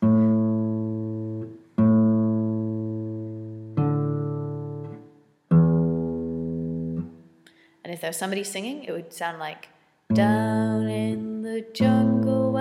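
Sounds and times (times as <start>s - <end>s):
string instrument plucking open A, D and E strings: 0.0s - 7.3s, 10.1s - 12.5s
speech: 8.0s - 12.5s.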